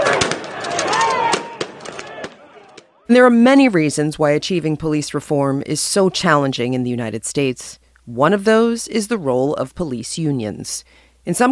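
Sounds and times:
pepper-ball launchers and flashbang grenades going off at a protest: 0.0 - 2.9
speech: 3.1 - 11.5.

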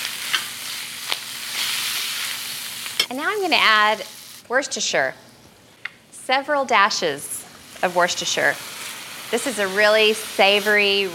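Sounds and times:
onions sizzling in a smoking hot skillet: 0.0 - 4.5, 7.1 - 11.1
speech: 3.1 - 5.3, 6.3 - 8.7, 9.3 - 11.1.

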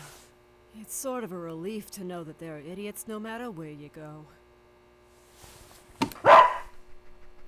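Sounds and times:
speech: 1.0 - 4.4
dog barking: 6.2 - 6.8.

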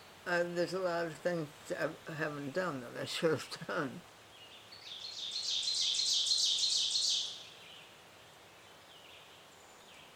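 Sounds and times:
faint steady soft wind: 0.0 - 10.1
speech: 0.2 - 4.1
sharp rapid bird trill of high repeated notes: 4.8 - 7.5.

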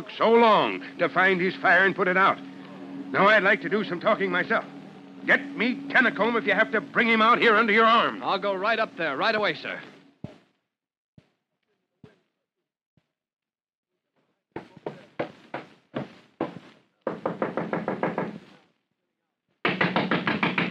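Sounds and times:
speech: 0.0 - 2.5, 3.1 - 9.9
loud knocking on a door: 14.6 - 18.5, 19.6 - 20.7.

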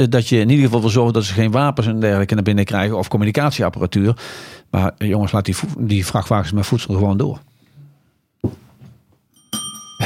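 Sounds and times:
speech: 0.0 - 7.5, 8.4 - 8.6
small push bell pressed: 9.3 - 10.0.

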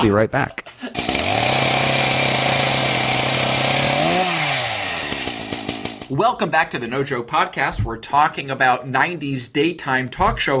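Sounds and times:
speech: 0.0 - 0.6, 6.1 - 10.5
chainsaw engine idling and revving: 0.9 - 6.1.

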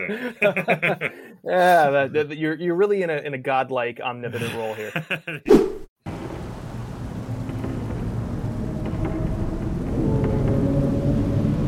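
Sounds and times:
laughter: 0.0 - 2.2, 4.3 - 5.5
speech: 0.0 - 5.9
deep thunder rumbling: 6.1 - 11.6
heavy rain: 6.1 - 11.6.

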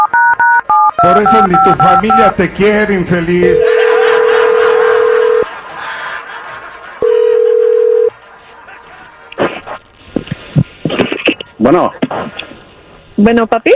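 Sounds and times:
telephone line tones as a call is placed: 0.0 - 2.3, 3.5 - 5.5, 7.0 - 8.1
faint noise: 0.0 - 13.7
speech: 1.0 - 3.7, 11.7 - 12.4, 13.2 - 13.7
laughter: 3.4 - 12.7.

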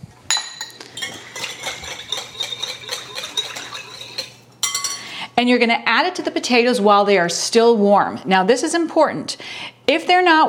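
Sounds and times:
metal whisk clinking against a bowl whisking pickle-juice dressing: 0.4 - 5.1
speech: 5.4 - 10.4.

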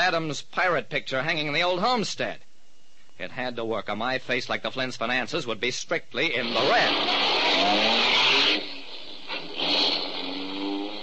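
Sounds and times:
speech: 0.0 - 2.5, 3.2 - 8.7
car engine roaring as the car drives off: 6.4 - 11.0
road noise: 6.5 - 11.0.

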